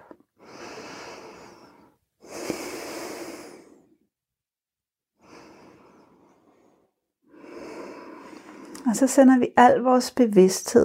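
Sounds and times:
slow deep breaths taken to relax the body: 0.0 - 4.1, 5.2 - 8.9
speech: 8.9 - 10.8.

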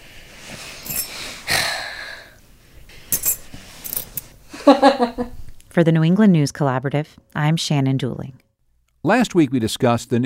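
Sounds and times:
set of keys jingling: 0.8 - 1.2, 3.0 - 4.3
speech: 4.7 - 8.4, 9.0 - 10.2.

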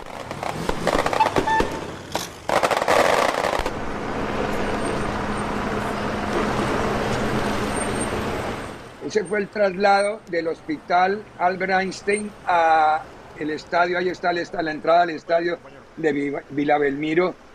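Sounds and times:
firework bangs and crackles during a funeral procession: 0.0 - 4.8
outdoor traffic noise: 0.0 - 17.5
outdoor crowd noise: 4.4 - 8.8
speech: 9.1 - 17.4.

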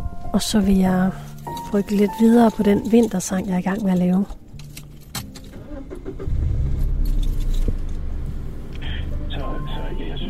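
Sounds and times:
speech: 0.4 - 4.4
car engine starting and rumbling: 0.4 - 10.2
car keys jangling: 1.3 - 8.1.

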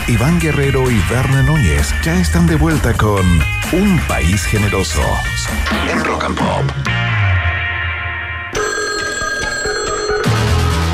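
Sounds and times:
speech: 0.1 - 7.3
telephone ringing with a trilling bell tone: 8.5 - 10.9.

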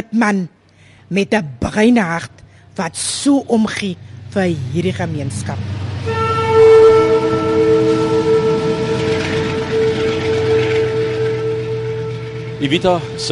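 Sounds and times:
speech: 0.1 - 5.9, 12.6 - 13.3
low rumble of a passing train at a railway station: 2.4 - 13.3
train horn blaring at a railway station in Darling South Africa: 5.5 - 13.3.

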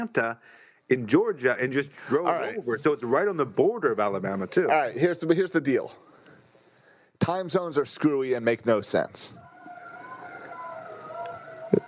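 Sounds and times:
speech: 0.0 - 6.1, 7.2 - 9.4
ambulance siren wailing: 9.4 - 11.8.

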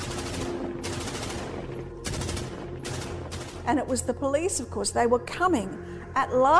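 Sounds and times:
rapid gunfire bursts: 0.0 - 4.0
speech: 3.7 - 6.5.

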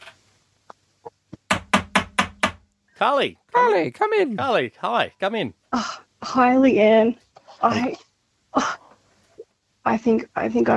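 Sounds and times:
knocking on an office door: 1.4 - 2.6
speech: 3.0 - 8.0, 8.6 - 8.8, 9.8 - 10.7.

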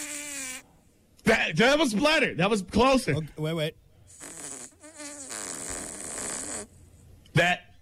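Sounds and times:
fart sound effects played from a phone app: 0.0 - 0.7, 4.1 - 6.8
speech: 1.3 - 3.8, 7.4 - 7.6.

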